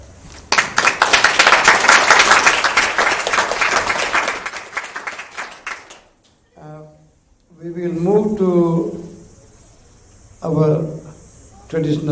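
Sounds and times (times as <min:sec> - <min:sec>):
audience applause: 0:00.5 - 0:06.2
speech: 0:07.8 - 0:08.9, 0:11.7 - 0:12.0.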